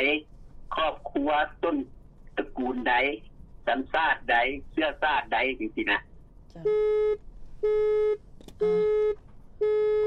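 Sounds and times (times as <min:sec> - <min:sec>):
faint noise: 0:00.0 - 0:10.0
speech: 0:00.0 - 0:10.0
phone call disconnection electronic beeps: 0:06.6 - 0:10.0.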